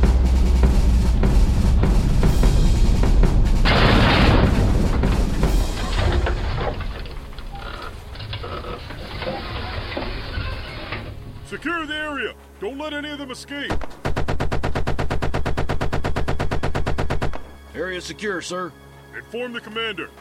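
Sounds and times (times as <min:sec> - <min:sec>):
rumbling booms across a battlefield: 0:00.0 - 0:11.4
speech: 0:12.7 - 0:14.0, 0:17.8 - 0:20.1
gunfire echoing across a battlefield: 0:13.7 - 0:17.5.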